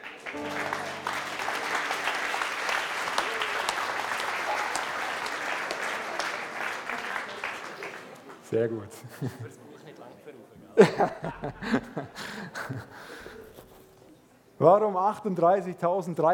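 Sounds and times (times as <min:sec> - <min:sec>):
audience applauding: 0:00.0 - 0:08.5
speech: 0:08.5 - 0:09.7, 0:11.0 - 0:13.3, 0:14.6 - 0:16.3
laughter: 0:08.9 - 0:09.7, 0:10.8 - 0:13.7.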